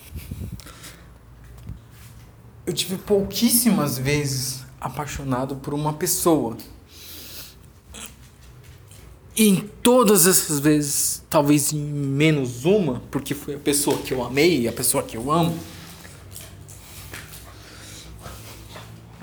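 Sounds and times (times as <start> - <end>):
speech: 2.7 - 6.8, 9.4 - 15.8
female dog snorting and sniffing: 15.7 - 19.2.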